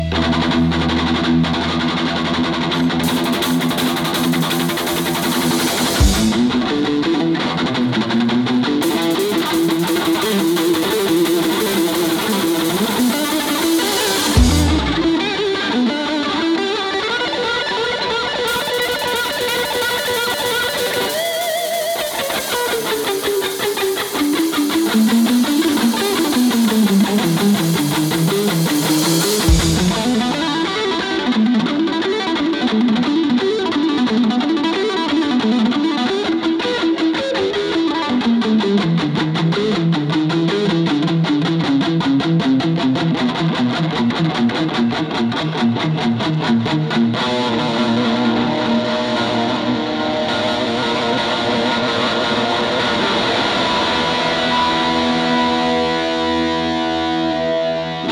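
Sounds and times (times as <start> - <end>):
live guitar solo: 0.0 - 58.1.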